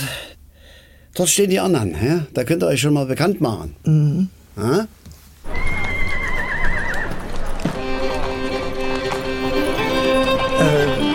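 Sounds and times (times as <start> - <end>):
speech: 1.2 - 5.1
horse hooves clip-clopping: 5.4 - 11.1
horses neighing: 5.4 - 11.1.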